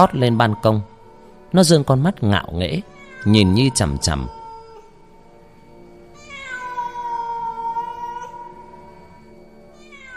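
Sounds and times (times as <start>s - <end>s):
speech: 0.0s - 0.9s, 1.5s - 4.4s
black cat meowing: 2.8s - 4.9s, 6.2s - 9.0s, 9.8s - 10.1s.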